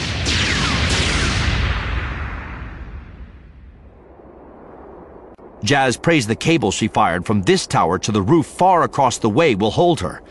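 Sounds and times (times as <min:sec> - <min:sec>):
ship's guns firing: 0:00.0 - 0:03.2
speech: 0:05.6 - 0:10.2.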